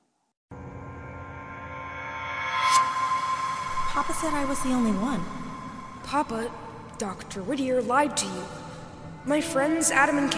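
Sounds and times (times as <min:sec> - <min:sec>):
hollow drone like in a tunnel: 0:00.5 - 0:10.3
bright shimmering flare: 0:00.8 - 0:07.0
speech: 0:04.0 - 0:05.4, 0:06.1 - 0:08.6, 0:09.2 - 0:10.3.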